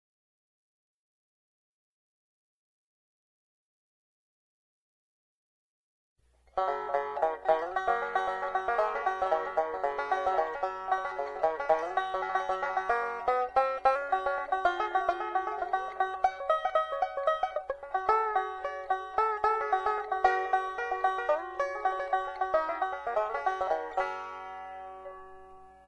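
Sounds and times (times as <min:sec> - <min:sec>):
walnut tranjo: 0:06.5 - 0:25.8.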